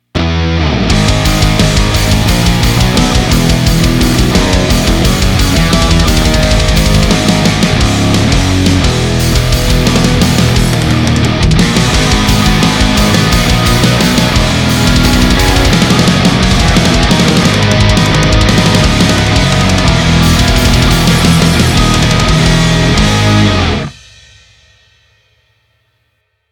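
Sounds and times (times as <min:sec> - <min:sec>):
hard rock remix: 0:00.2 - 0:24.7.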